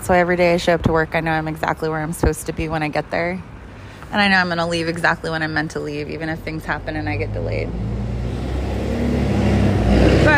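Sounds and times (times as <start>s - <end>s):
speech: 0.1s - 3.5s, 4.1s - 8.0s
large truck driving past with engine drone and road noise: 6.7s - 10.3s.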